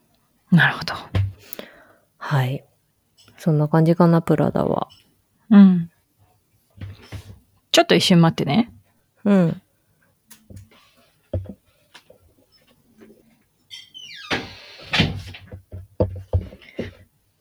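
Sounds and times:
speech: 0:00.5 - 0:01.6, 0:02.2 - 0:02.7, 0:03.4 - 0:05.9, 0:07.7 - 0:09.6
knocks and clunks of handling and movement: 0:06.8 - 0:07.4, 0:10.5 - 0:12.2, 0:14.3 - 0:17.1
door shutting: 0:13.7 - 0:15.5.

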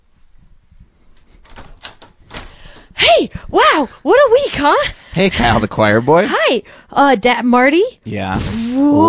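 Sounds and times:
door rattling with clattering knocks: 0:01.4 - 0:02.8
speech: 0:03.2 - 0:09.0.

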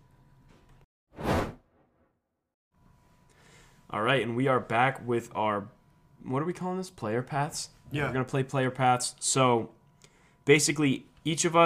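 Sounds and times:
whoosh transition sound effect: 0:01.2 - 0:02.0
speech: 0:03.9 - 0:09.8, 0:10.4 - 0:11.6.

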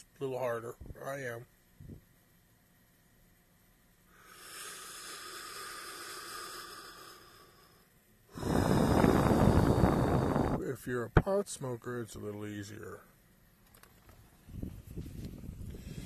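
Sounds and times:
speech: 0:00.2 - 0:02.0, 0:10.7 - 0:13.1
loud forceful exhale in a breathing exercise: 0:04.1 - 0:10.6, 0:15.6 - 0:16.0
slow airy inhale in a breathing exercise: 0:04.1 - 0:10.6, 0:15.6 - 0:16.0.

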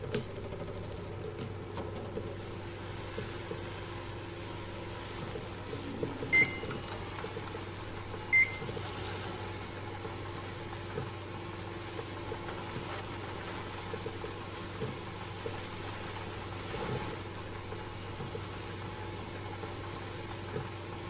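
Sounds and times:
microwave oven humming while heating food: 0:00.0 - 0:21.0
short electronic beeps of a microwave oven: 0:06.3 - 0:06.8, 0:08.3 - 0:08.7.

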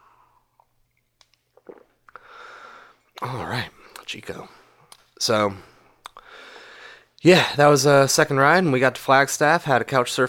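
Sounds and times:
person slurping and swallowing coffee: 0:00.2 - 0:04.1
brief airy breathy exhale after sipping coffee: 0:02.2 - 0:03.0, 0:06.2 - 0:07.1
speech: 0:03.2 - 0:04.6, 0:05.2 - 0:05.7, 0:07.2 - 0:10.2.

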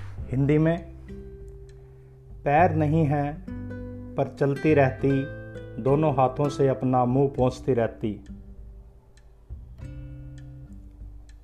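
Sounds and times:
sustained music: 0:00.0 - 0:11.4
speech: 0:00.3 - 0:01.2, 0:02.4 - 0:03.5, 0:04.2 - 0:08.3
clock ticking: 0:07.4 - 0:11.4.

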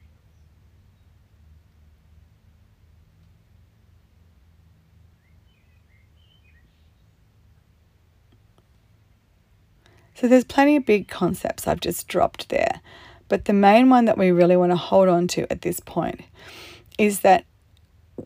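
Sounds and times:
soft hiss: 0:00.0 - 0:18.2
steady low outdoor hum: 0:00.0 - 0:18.2
faint bird chirps: 0:05.2 - 0:07.2
speech: 0:10.2 - 0:17.5.

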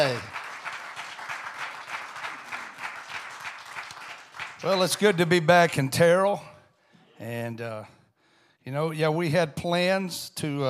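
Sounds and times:
speech: 0:00.0 - 0:00.3, 0:04.6 - 0:06.5, 0:07.2 - 0:08.0, 0:08.6 - 0:10.6
audience applauding: 0:00.0 - 0:06.0.

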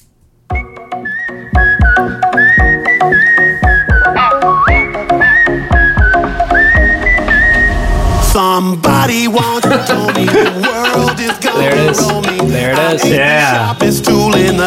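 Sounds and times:
bright whistled melody: 0:00.5 - 0:08.3
upbeat tropical house track with bouncy beat: 0:00.6 - 0:14.6
speech: 0:08.6 - 0:14.6
laughter: 0:09.4 - 0:13.8.

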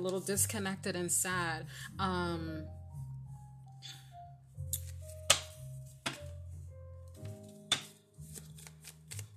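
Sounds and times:
speech: 0:00.0 - 0:02.8
soft sustained tonal music: 0:00.0 - 0:09.3
sharp snaps of cards: 0:04.7 - 0:06.2, 0:07.6 - 0:09.3
deck of cards being shuffled: 0:04.8 - 0:06.2, 0:07.1 - 0:09.3.

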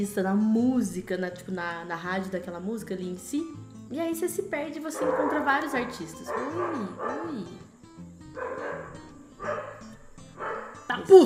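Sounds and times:
speech: 0:00.0 - 0:07.7, 0:11.0 - 0:11.2
dog barking: 0:04.9 - 0:07.4, 0:08.3 - 0:10.9.

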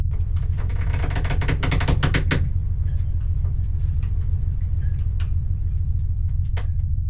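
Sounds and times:
boat motor droning as the boat runs on the water: 0:00.1 - 0:07.0
loud rattling churning noise: 0:00.1 - 0:07.0.

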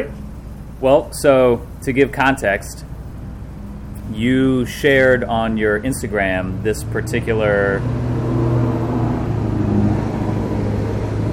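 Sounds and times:
Chevy 2500 pickup truck engine rumbling as it passes by: 0:00.0 - 0:11.3
speech: 0:00.8 - 0:02.9, 0:04.1 - 0:08.1.

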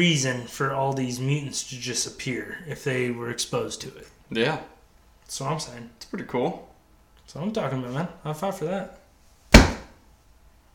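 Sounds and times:
speech: 0:00.0 - 0:06.7, 0:07.3 - 0:09.0
hands slapping together to swat a mosquito: 0:09.6 - 0:09.9.

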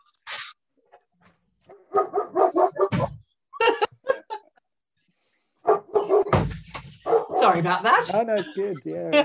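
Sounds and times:
dog barking: 0:01.7 - 0:03.1, 0:05.6 - 0:06.4, 0:07.0 - 0:07.7
speech: 0:07.5 - 0:09.2.

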